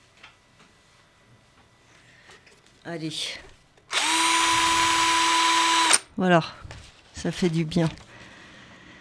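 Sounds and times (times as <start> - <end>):
speech: 2.8 - 3.5, 6.2 - 8.0
power drill running with a high-pitched whine: 3.9 - 6.1.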